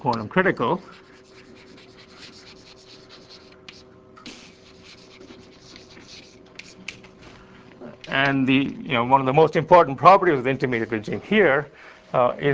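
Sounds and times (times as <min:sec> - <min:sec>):
speech: 0:00.0 - 0:01.3, 0:08.1 - 0:12.5
drawing on a board during a physics lecture: 0:00.6 - 0:07.1.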